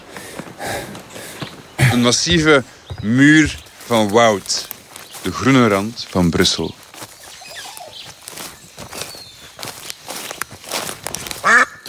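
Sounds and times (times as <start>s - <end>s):
light footsteps in a forest: 0.0s - 11.8s
speech: 2.0s - 6.8s
duck on a trumpet in a forest at the edge of Brussels quacking: 11.4s - 11.8s.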